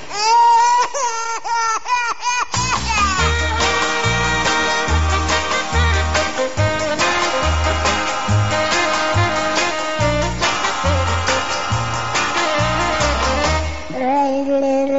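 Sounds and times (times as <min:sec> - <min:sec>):
baby crying: 0:00.0 - 0:03.9
upbeat music with a thumping bass line: 0:02.6 - 0:13.9.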